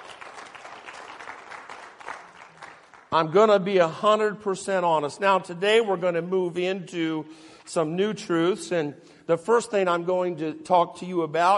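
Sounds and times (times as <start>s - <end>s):
audience clapping hands: 0.0s - 3.1s
speech: 3.1s - 11.5s.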